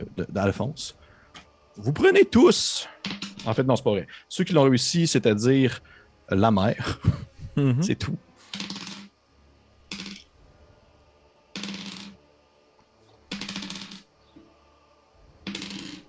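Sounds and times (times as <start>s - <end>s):
speech: 0.2s - 1.0s, 1.8s - 8.3s
laughter: 6.8s - 8.2s
eight-sided dice clattering across a hard surface: 8.5s - 9.1s, 9.9s - 10.2s, 11.6s - 12.2s, 13.3s - 14.1s, 15.4s - 16.0s.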